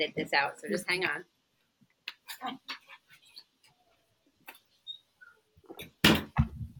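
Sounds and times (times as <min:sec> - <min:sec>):
speech: 0:00.0 - 0:01.4, 0:02.4 - 0:02.8
knocks and shuffling movement of dogs being let out: 0:01.5 - 0:06.7
door shutting with loud thud and rattle: 0:06.0 - 0:06.7.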